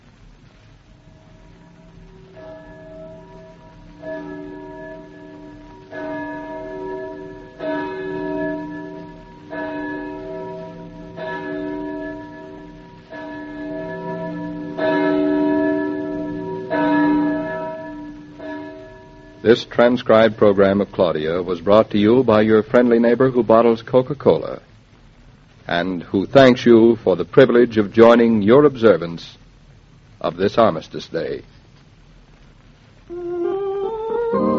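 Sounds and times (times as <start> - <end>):
church bell tolling: 1.0 - 20.4
speech: 19.5 - 24.6, 25.7 - 29.4, 30.2 - 31.6.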